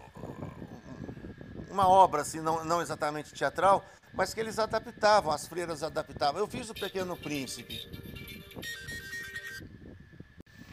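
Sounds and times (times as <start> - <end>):
speech: 1.7 - 8.0, 8.6 - 9.0
phone ringtone from an incoming call: 6.7 - 9.6.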